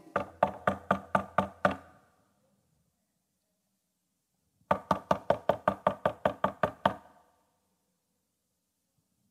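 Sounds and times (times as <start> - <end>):
rapid loud knocking on a door: 0.0 - 1.9, 4.7 - 7.1.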